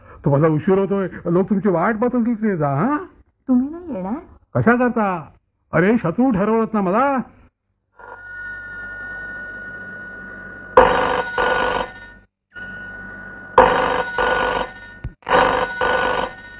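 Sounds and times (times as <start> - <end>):
speech: 0.2 - 7.4
telephone ringing in double bursts: 8.0 - 16.5.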